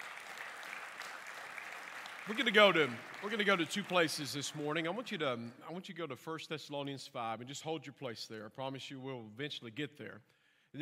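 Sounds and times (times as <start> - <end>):
audience applauding in praise: 0.0 - 5.4
speech: 2.3 - 10.8.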